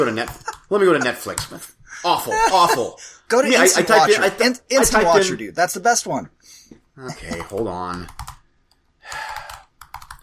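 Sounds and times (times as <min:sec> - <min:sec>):
laughter: 0:00.0 - 0:04.3
speech: 0:00.0 - 0:08.2
typing on a computer keyboard: 0:07.3 - 0:08.4, 0:09.1 - 0:10.2.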